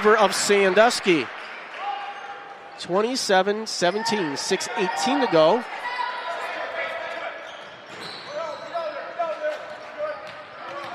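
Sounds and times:
speech: 0.0s - 1.5s, 2.8s - 5.9s
basketball court noise: 0.0s - 3.2s, 3.9s - 10.9s.

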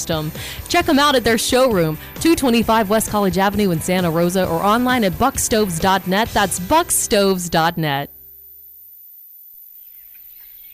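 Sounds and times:
speech: 0.0s - 8.2s
birds chirping in scattered high tweets: 9.7s - 10.7s.

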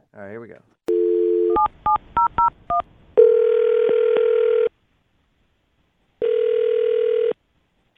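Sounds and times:
long phone ringback tones: 0.9s - 1.7s, 3.2s - 4.7s, 6.2s - 7.3s.

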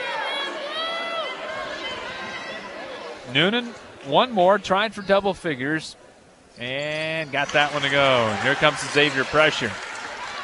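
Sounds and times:
student section crowd cheering in arena: 0.0s - 3.3s, 7.2s - 10.4s
speech: 3.3s - 6.0s, 6.6s - 9.9s.

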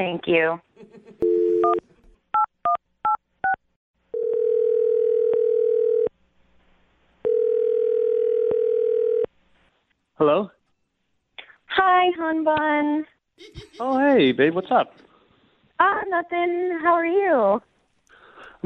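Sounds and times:
speech: 0.0s - 1.9s, 10.2s - 10.6s, 11.8s - 15.0s, 15.8s - 17.7s
laughter: 0.8s - 1.2s, 13.4s - 14.3s
telephone dial tone: 1.2s - 1.8s, 4.1s - 6.1s, 7.2s - 9.3s.

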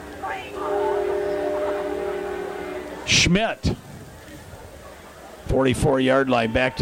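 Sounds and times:
train rolling past: 0.0s - 4.2s
train horn long steady blast: 0.1s - 3.4s
speech: 3.1s - 3.8s, 5.5s - 6.8s.

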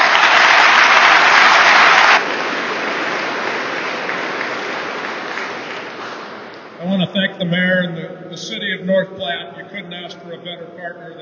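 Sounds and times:
crowd applauding: 0.0s - 7.0s
speech: 7.4s - 11.2s.

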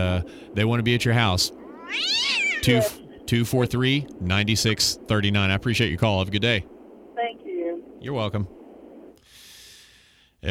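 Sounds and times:
speech: 0.0s - 6.7s, 8.0s - 8.6s
kitten meowing: 1.7s - 3.0s
person murmuring: 2.6s - 3.0s.

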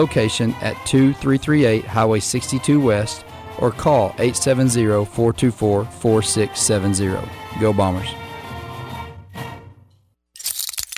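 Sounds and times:
speech: 0.0s - 8.2s
glass shattering in a loud bright crash: 10.4s - 10.9s
sharp crackling and tinkling glass fragments: 10.4s - 10.9s.

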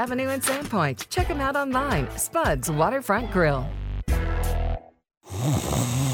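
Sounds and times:
speech: 0.0s - 4.6s, 5.4s - 6.1s
person snoring loudly: 5.3s - 6.1s.

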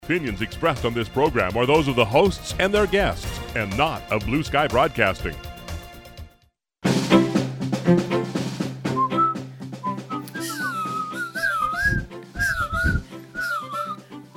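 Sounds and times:
steady instrumental backing music: 0.0s - 14.3s
speech: 0.1s - 5.5s
person whistling a sliding warbling tune: 8.9s - 14.3s.

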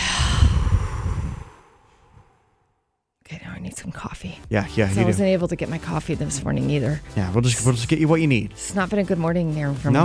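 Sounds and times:
forceful breathy exhale in a deep breathing exercise: 0.0s - 2.8s
speech: 3.3s - 10.0s.

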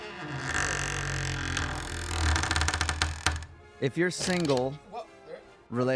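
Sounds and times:
creaking door sound effect: 0.0s - 3.6s, 4.2s - 4.8s
speech: 3.8s - 4.8s, 5.7s - 5.9s.

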